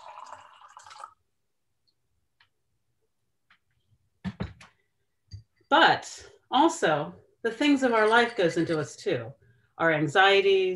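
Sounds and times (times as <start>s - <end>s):
water poured from pitcher into glass: 0.0s - 1.2s
speech: 5.7s - 10.7s.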